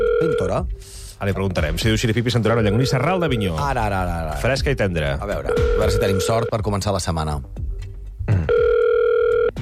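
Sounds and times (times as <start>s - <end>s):
telephone ringback tone while calling: 0.0s - 0.5s, 5.5s - 6.5s, 8.5s - 9.5s
speech: 0.0s - 7.6s.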